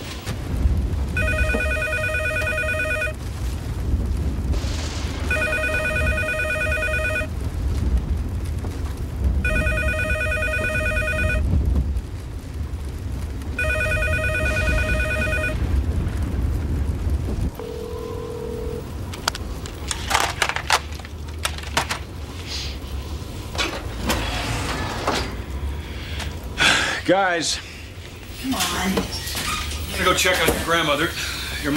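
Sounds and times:
constant low rumbling noise: 0.0 - 31.7
telephone ringing with electronic trill: 1.2 - 3.2, 5.3 - 7.3, 9.4 - 11.4, 13.6 - 15.6
speech: 27.1 - 27.7, 30.0 - 31.7.

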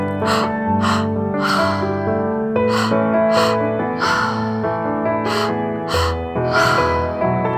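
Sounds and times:
deep rhythmic gasping breathing during a confidence breathwork exercise: 0.2 - 7.4.

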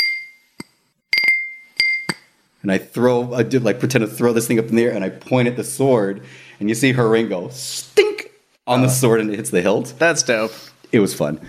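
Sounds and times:
small brandy snifter clinking while handled during a magic trick: 0.0 - 2.3
speech: 2.6 - 8.1, 8.7 - 11.4.

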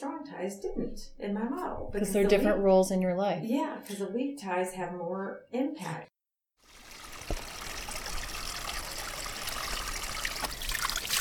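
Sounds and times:
speech: 0.0 - 6.1
water pouring out of a bottle while bottles are cleaned out in the desert: 6.8 - 11.1.

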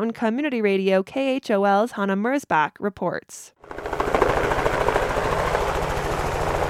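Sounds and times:
speech: 0.0 - 3.8
helicopter rotor chop above snowy open hills: 3.6 - 6.6
helicopter low engine drone: 3.7 - 6.6.

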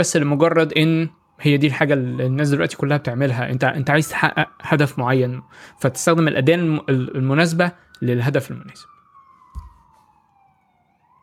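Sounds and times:
speech: 0.0 - 8.9
police siren wailing outside: 0.0 - 11.2
low thump: 9.6 - 9.9.

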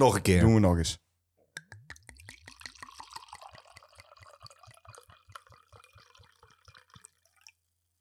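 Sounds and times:
speech: 0.0 - 1.0
palm beer from a just-opened bottle pouring into a glass: 1.8 - 7.6.

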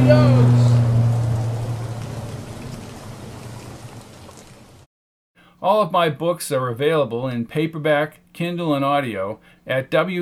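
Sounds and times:
airplane engines droning under a rushing roar: 0.0 - 4.0
speech: 0.1 - 0.6, 5.6 - 10.2.

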